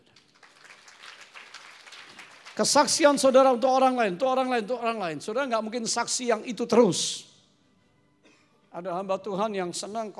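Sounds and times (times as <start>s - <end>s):
audience applauding: 0.0s - 3.3s
speech: 2.6s - 7.3s, 8.8s - 10.1s.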